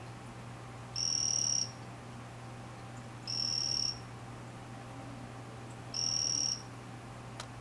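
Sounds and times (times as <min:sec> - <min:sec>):
low steady hum: 0:00.0 - 0:07.6
Ranitomeya vanzolinii high-pitched buzzy trill: 0:01.0 - 0:01.8, 0:03.3 - 0:04.0, 0:06.0 - 0:06.7.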